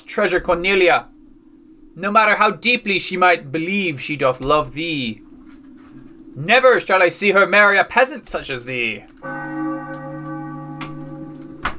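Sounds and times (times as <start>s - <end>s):
speech: 0.2s - 1.1s, 2.0s - 5.2s, 6.4s - 9.4s
deep church bell ringing with long humming resonance: 9.2s - 11.7s.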